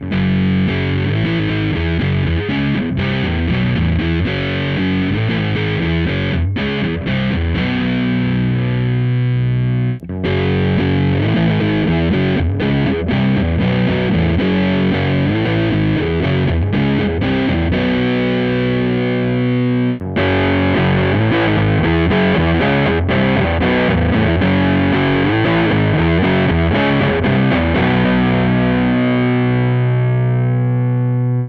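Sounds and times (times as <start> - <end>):
guitar rhythm part through Ampeg Rocket II amplifier with reverb: 0.0 - 31.4.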